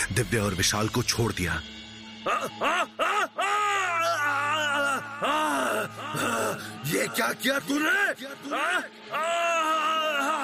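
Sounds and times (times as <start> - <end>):
speech: 0.2 - 3.0, 5.2 - 10.3
man screaming in pain: 2.3 - 7.2, 7.8 - 10.4.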